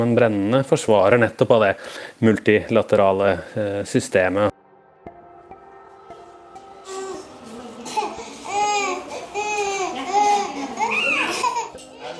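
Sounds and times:
speech: 0.0s - 4.5s
hungry young child crying in war-torn Yemen: 6.8s - 11.8s.

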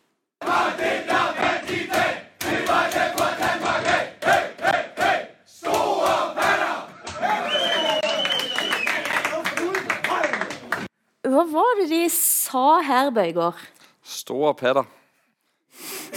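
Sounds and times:
group of voices chanting a team cheer: 0.4s - 8.2s
hands clapping: 1.9s - 10.9s
speech: 12.5s - 15.0s.

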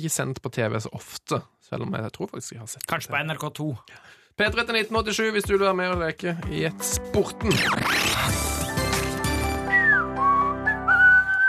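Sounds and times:
speech: 0.0s - 8.4s
dense musical backing: 4.4s - 11.4s
person whistling a short melodic phrase: 9.5s - 11.4s.

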